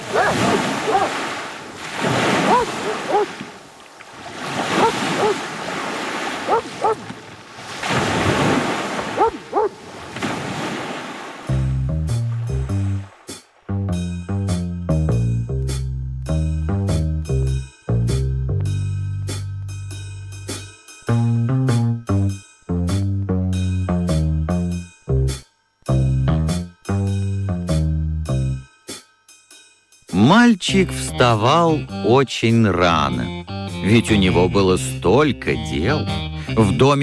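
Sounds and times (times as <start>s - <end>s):
sea waves surging and breaking: 0.0s - 13.6s
music: 11.5s - 37.0s
speech: 30.3s - 37.0s.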